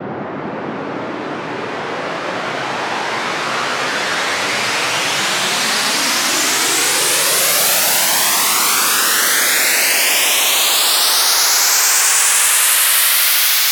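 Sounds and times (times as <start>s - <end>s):
white noise riser: 0.1s - 13.6s.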